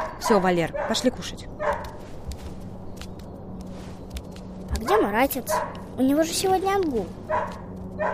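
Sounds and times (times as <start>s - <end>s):
dog barking: 0.0s - 2.0s, 4.8s - 5.8s, 7.3s - 8.1s
speech: 0.2s - 1.9s, 4.8s - 8.1s
faint clicks and shuffling like light footsteps: 1.6s - 8.1s.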